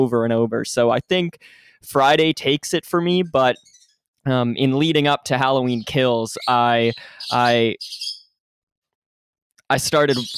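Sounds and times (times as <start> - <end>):
speech: 0.0 - 8.0, 9.7 - 10.3
bird call with harsh squawk and high thin chirp: 3.6 - 4.0, 5.6 - 8.4, 10.0 - 10.3.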